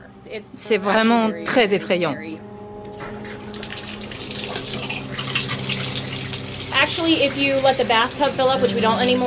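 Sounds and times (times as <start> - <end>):
speech: 0.2 - 3.2, 6.8 - 9.2
water running from a tap: 3.1 - 9.2.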